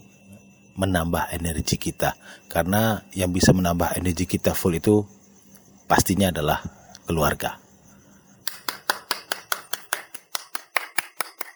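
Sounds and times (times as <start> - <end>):
speech: 0.8 - 5.2, 5.9 - 7.6
hand clapping: 8.4 - 11.5.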